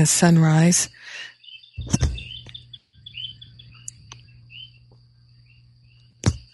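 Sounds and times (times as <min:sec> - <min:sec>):
speech: 0:00.0 - 0:02.2
birds chirping at sunrise: 0:00.0 - 0:06.5
frogs trilling chorus: 0:00.0 - 0:06.5
low hum: 0:00.0 - 0:06.5
sharp knocks: 0:06.2 - 0:06.5.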